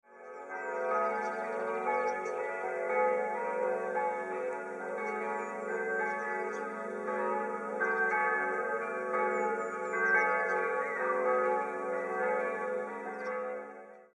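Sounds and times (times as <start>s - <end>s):
church bells of St Martin in Altsteusslingen: 0.1s - 14.1s.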